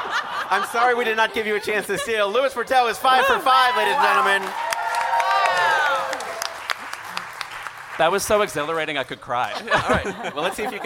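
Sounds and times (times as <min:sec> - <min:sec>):
laughter: 0:00.0 - 0:04.4, 0:09.3 - 0:10.8
speech: 0:00.5 - 0:04.6, 0:08.0 - 0:10.8
crowd whooping and cheering: 0:03.0 - 0:07.5
crowd applauding: 0:03.4 - 0:09.1.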